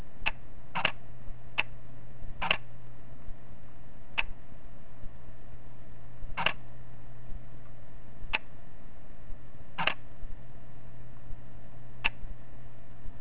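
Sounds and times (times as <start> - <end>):
Canon EOS-7D camera in quiet mode: 0.0 - 4.4, 6.3 - 6.8, 9.7 - 10.3, 11.0 - 13.1.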